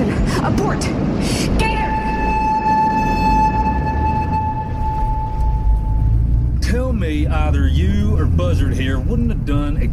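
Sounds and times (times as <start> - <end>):
train rumbling on tracks: 0.0 - 9.9
speech: 0.5 - 1.6
sustained horn-like tone: 1.6 - 6.5.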